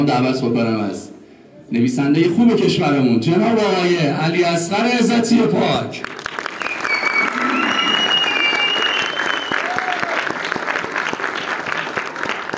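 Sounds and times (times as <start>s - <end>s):
speech: 0.0s - 1.1s, 1.7s - 6.2s
audience applause: 6.0s - 12.5s
cheers: 6.2s - 12.5s
faint whistles: 6.6s - 9.8s.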